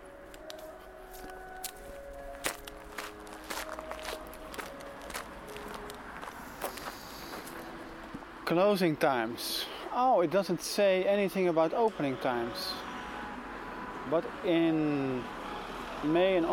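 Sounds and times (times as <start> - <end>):
steady outdoor hiss: 0.0 - 16.5
footsteps walking through a park: 0.2 - 8.2
speech: 8.5 - 12.9, 14.1 - 15.4, 16.0 - 16.5.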